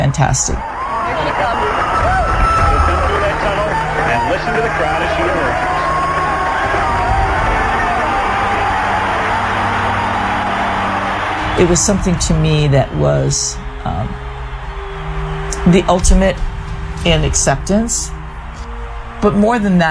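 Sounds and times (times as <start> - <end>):
speech: 0.0 - 2.0, 4.3 - 5.8, 11.6 - 14.3, 15.6 - 18.2, 19.2 - 19.8
huge stadium crowd of about 90,000 people screaming and cheering for a race winner: 0.0 - 19.8
scattered whoops from the stadium crowd: 0.6 - 11.7.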